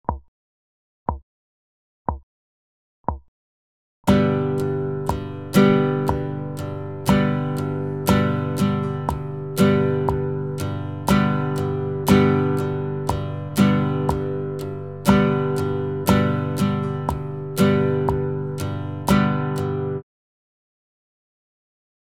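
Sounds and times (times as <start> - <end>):
strumming: 4.1 - 20.0.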